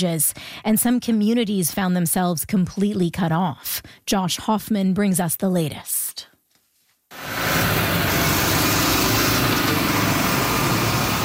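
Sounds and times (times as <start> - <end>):
speech: 0.0 - 6.3
bulldozers and dump trucks repairing storm-damaged roadways in Cape Breton: 7.2 - 11.2.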